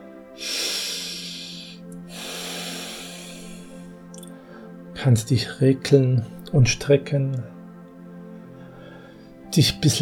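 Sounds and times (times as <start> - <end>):
quiet steady tone: 0.0 - 10.0
deep breath in and out: 0.2 - 4.9, 8.3 - 9.5
speech: 5.0 - 7.6, 9.6 - 10.0.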